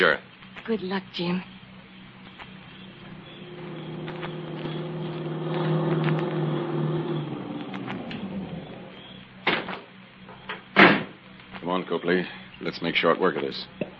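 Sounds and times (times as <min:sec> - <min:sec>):
speech: 0:00.0 - 0:01.5, 0:12.0 - 0:13.9
car engine hum: 0:01.9 - 0:09.8.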